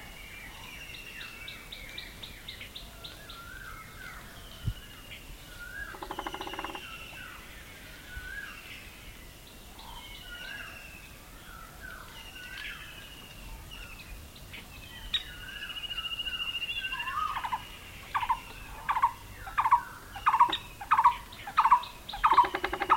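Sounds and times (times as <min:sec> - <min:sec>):
thin whistles and chatter from other birds: 0:00.1 - 0:08.9, 0:11.5 - 0:22.9
Fulvous-breasted woodpecker Dendrocopos macei calls: 0:05.7 - 0:07.3, 0:16.6 - 0:22.9.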